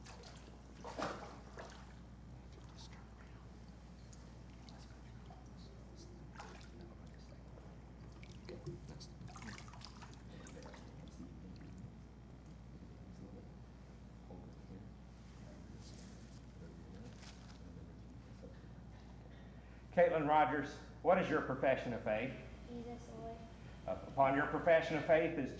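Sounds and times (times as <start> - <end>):
water sloshing and splashing as a person wades into a baptismal pool: 0.0 - 2.8, 6.3 - 7.2, 8.0 - 11.1
steady low hum: 0.0 - 25.5
faint murmuring voices: 2.2 - 20.0
speech: 20.0 - 23.2, 24.2 - 25.5.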